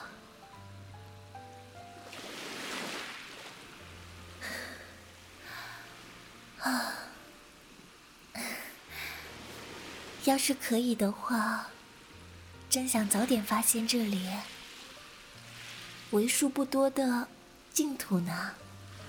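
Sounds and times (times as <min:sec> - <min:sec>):
soft sustained musical tones: 0:00.0 - 0:19.0
ocean waves on the sea: 0:02.0 - 0:08.1, 0:08.8 - 0:16.7, 0:18.5 - 0:19.0
speech: 0:06.6 - 0:06.9, 0:10.2 - 0:11.8, 0:12.7 - 0:14.6, 0:16.1 - 0:18.7.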